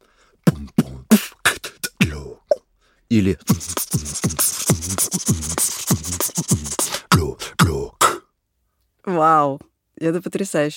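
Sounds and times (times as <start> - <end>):
human beatbox rhythm made with mouth: 0.4 - 2.6, 3.2 - 8.3
speech: 3.1 - 5.4, 9.2 - 10.7.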